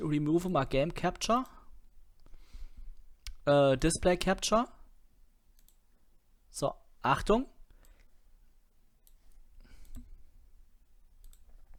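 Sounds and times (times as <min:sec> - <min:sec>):
speech: 0:00.0 - 0:01.6, 0:03.4 - 0:04.8, 0:06.5 - 0:07.5
computer mouse clicks: 0:05.6 - 0:05.8, 0:09.0 - 0:10.1, 0:11.2 - 0:11.7.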